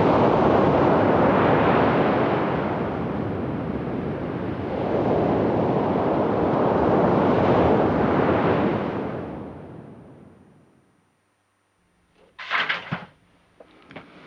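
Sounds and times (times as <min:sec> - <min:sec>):
Pacific Ocean surf roaring on a beach: 0:00.0 - 0:10.2
sharp bumps: 0:12.2 - 0:13.2.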